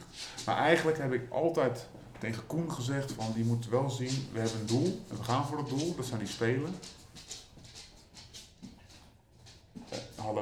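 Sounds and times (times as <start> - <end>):
dog's paws clicking on a hard floor: 0.0 - 10.3
speech: 0.5 - 7.3.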